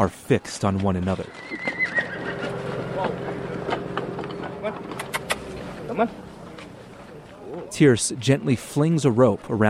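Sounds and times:
speech: 0.0s - 2.0s, 6.0s - 6.2s, 7.7s - 9.6s
white stallion whinnying while circling in a round pen: 1.3s - 2.6s
steady low hum: 1.4s - 8.2s
faint indistinct voices: 2.4s - 9.6s.

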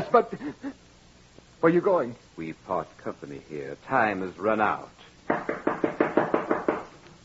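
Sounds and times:
speech: 0.1s - 0.8s, 1.6s - 5.4s
maid knocking on a door: 5.3s - 6.9s.

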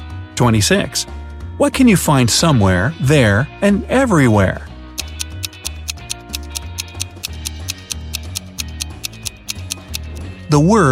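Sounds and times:
speech: 0.4s - 4.7s, 10.5s - 10.9s
clock ticking: 5.0s - 10.3s.

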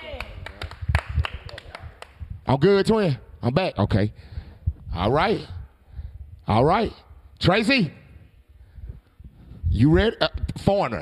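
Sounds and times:
people clapping: 0.0s - 2.3s
speech: 2.5s - 4.3s, 5.0s - 5.6s, 6.5s - 8.0s, 9.8s - 10.9s.

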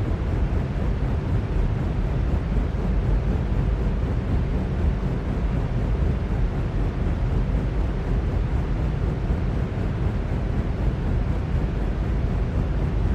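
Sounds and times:
ceiling fan running: 0.0s - 13.1s.

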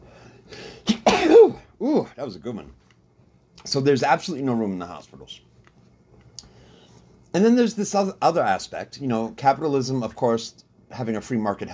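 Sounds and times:
harsh coughs: 0.8s - 1.6s
speech: 2.0s - 2.8s, 3.6s - 5.5s, 7.3s - 11.7s.

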